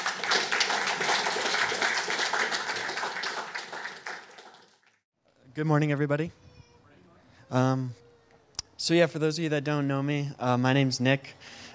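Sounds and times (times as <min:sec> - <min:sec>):
audience applause: 0:00.0 - 0:05.0
speech: 0:05.6 - 0:06.4, 0:07.5 - 0:08.0, 0:08.8 - 0:11.6.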